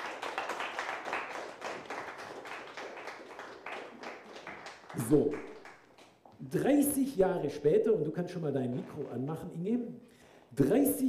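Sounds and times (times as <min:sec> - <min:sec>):
audience applause after a performance: 0:00.0 - 0:05.8
speech: 0:05.0 - 0:05.5, 0:06.4 - 0:11.0.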